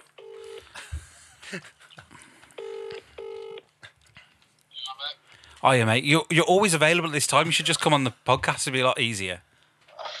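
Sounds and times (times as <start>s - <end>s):
speech: 1.5s - 1.8s, 5.6s - 9.5s
electronic phone dialing tones: 2.6s - 3.6s.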